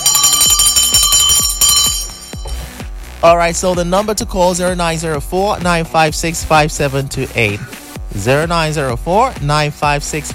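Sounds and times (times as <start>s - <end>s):
bright insistent bell rung to welcome a first-time caller: 0.0s - 2.8s
speech: 3.2s - 10.3s.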